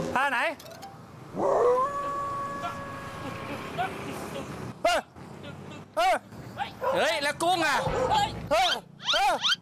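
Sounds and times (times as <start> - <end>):
speech: 0.1 - 0.8, 1.3 - 2.0, 6.9 - 9.6
dog howling: 1.4 - 3.3
dog barking: 6.8 - 7.1, 7.7 - 8.3.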